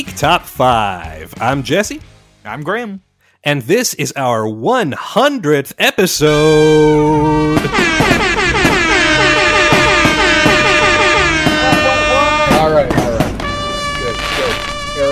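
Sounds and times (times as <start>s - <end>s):
speech: 0.0s - 8.2s
air horns blaring: 6.3s - 15.0s.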